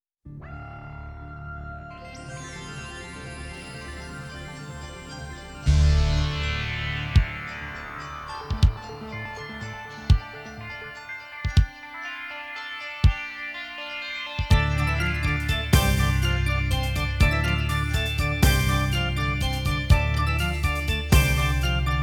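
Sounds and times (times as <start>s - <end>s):
drums: 5.7s - 7.7s, 8.5s - 8.9s, 10.1s - 10.3s, 11.4s - 11.8s, 13.0s - 13.2s, 14.4s - 22.0s.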